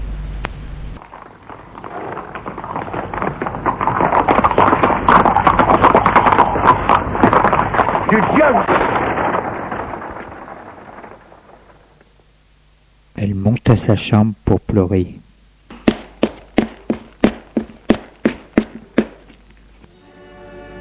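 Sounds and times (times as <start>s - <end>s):
ridden horse galloping away from the stables: 1.0s - 12.1s, 15.7s - 19.8s
speech: 8.1s - 8.8s, 13.7s - 15.2s.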